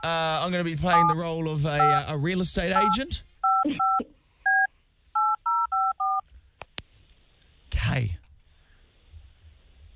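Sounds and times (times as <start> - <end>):
speech: 0.0 - 3.8, 8.0 - 8.2
touch-tone beeps as a phone number is dialed: 1.8 - 2.0, 2.8 - 6.2.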